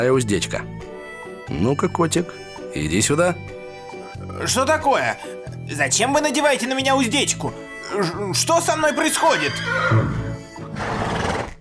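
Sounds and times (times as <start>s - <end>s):
speech: 0.0s - 0.9s, 1.5s - 3.6s, 4.2s - 10.2s
large ginger horse neighing: 8.0s - 11.6s.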